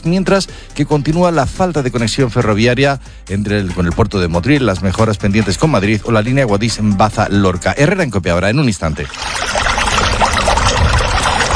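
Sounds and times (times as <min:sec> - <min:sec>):
speech: 0:00.0 - 0:09.6
water pouring: 0:04.7 - 0:06.6, 0:08.8 - 0:11.5.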